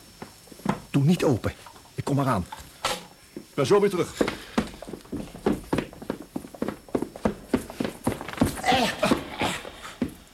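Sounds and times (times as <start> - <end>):
speech: 1.0 - 2.6, 3.6 - 4.4
footsteps of someone running: 3.4 - 10.3.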